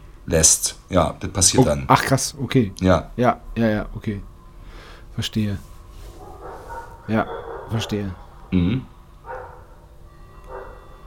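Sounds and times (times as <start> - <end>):
speech: 0.3 - 4.3, 5.2 - 5.7, 7.1 - 8.9
dog barks: 6.1 - 8.6, 9.2 - 11.0.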